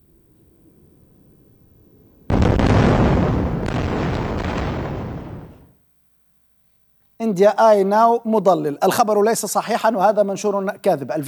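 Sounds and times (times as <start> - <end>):
massive explosion from an airstrike: 2.3 - 5.7
sharp blast: 2.3 - 5.7
speech: 7.2 - 11.2.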